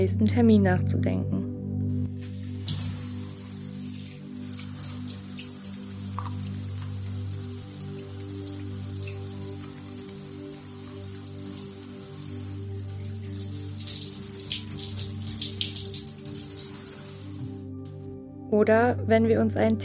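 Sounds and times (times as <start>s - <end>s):
speech: 0.0s - 1.4s, 18.6s - 19.8s
shower water spraying: 2.1s - 17.6s.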